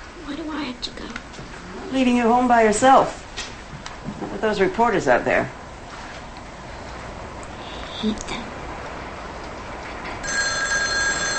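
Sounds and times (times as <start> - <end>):
speech: 0.8 - 3.2, 4.2 - 5.6, 8.0 - 8.5
telephone ringing with a shrill electronic trill: 10.2 - 11.3.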